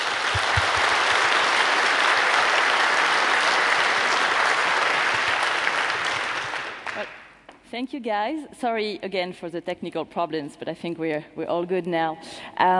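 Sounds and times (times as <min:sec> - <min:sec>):
conference audience applause: 0:00.0 - 0:07.3
speech: 0:07.7 - 0:12.7.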